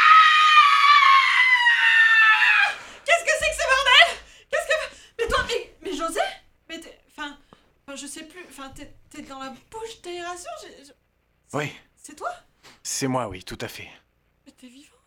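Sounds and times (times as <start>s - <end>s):
woman screaming high-pitched, startled walking into an office: 0.0s - 4.2s
speech: 8.6s - 12.3s, 13.0s - 14.0s.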